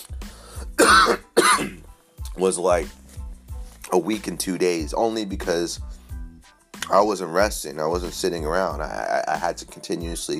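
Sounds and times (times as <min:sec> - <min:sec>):
harsh coughs: 0:00.6 - 0:01.9
person clearing throat: 0:00.8 - 0:01.9
speech: 0:02.4 - 0:03.0, 0:03.9 - 0:06.0, 0:06.9 - 0:10.3.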